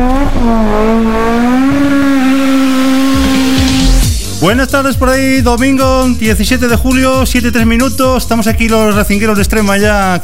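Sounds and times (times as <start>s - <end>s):
racing car engine revving: 0.0s - 4.2s
speech: 4.4s - 10.2s.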